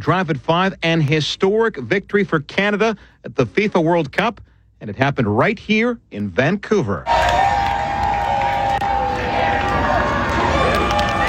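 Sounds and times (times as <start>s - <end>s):
speech: 0.0s - 7.2s
stadium crowd of football fans roaring after a goal: 7.1s - 11.2s.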